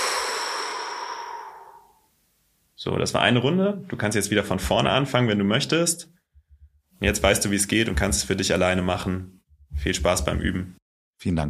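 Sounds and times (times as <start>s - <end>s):
long exhale after a breath hold in a guided deep-breathing exercise: 0.0s - 2.1s
speech: 2.8s - 6.2s, 7.0s - 11.4s.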